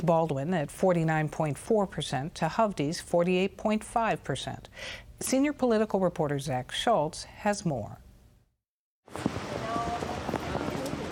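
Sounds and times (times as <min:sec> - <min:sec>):
speech: 0:00.0 - 0:08.0
steady rain: 0:09.1 - 0:11.1.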